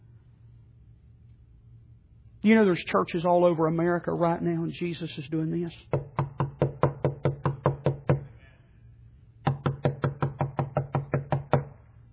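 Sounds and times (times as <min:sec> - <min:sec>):
speech: 0:02.4 - 0:06.1
firm knocking on a door: 0:05.9 - 0:08.2, 0:09.4 - 0:11.7.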